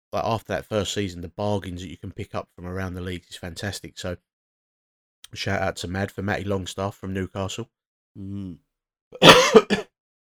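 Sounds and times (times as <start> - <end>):
speech: 0.1 - 4.3, 5.3 - 9.8
voiced throat-clearing hum: 9.2 - 9.9
person coughing: 9.2 - 10.0.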